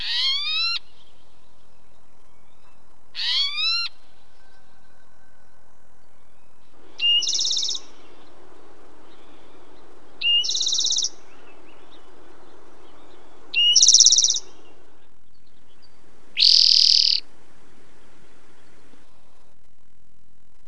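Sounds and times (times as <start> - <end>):
Spotted Towhee singing and calling in WA: 0.0 - 4.5, 6.0 - 17.3.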